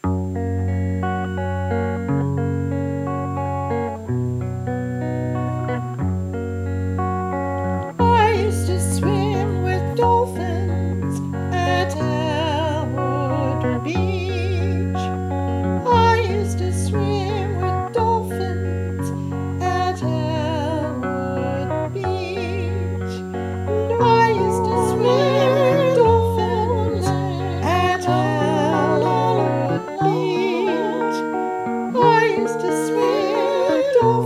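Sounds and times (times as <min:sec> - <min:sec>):
guitar: 0:00.0 - 0:34.2
voices: 0:08.0 - 0:34.2.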